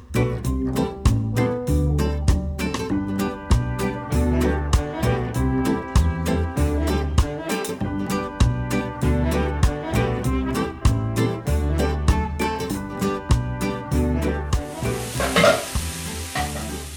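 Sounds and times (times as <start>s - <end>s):
rhythmic music with a steady beat: 0.0s - 16.9s
tamales sizzling in a frying pan in a Guatemalan cook's kitchen: 14.7s - 16.9s.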